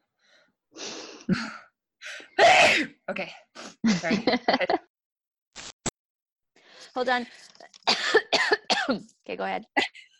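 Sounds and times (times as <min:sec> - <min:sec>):
speech: 0:01.3 - 0:01.6, 0:03.1 - 0:04.8, 0:07.0 - 0:07.5, 0:08.9 - 0:10.0
person sneezing: 0:02.4 - 0:03.0.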